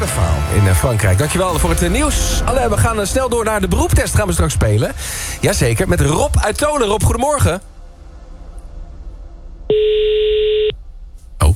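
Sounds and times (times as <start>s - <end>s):
speech: 0.1s - 7.7s
telephone ringback tone while placing a call: 9.7s - 10.8s.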